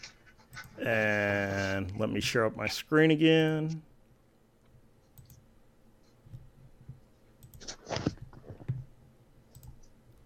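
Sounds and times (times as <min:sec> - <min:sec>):
speech: 0:00.8 - 0:03.9
computer mouse clicking: 0:05.1 - 0:05.4, 0:07.4 - 0:08.8, 0:09.5 - 0:10.0.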